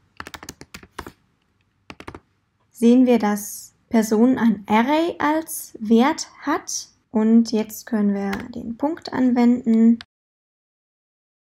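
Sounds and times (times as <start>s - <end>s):
typing on a computer keyboard entering text in database software: 0.2s - 1.2s, 1.9s - 2.2s
speech: 2.8s - 10.1s.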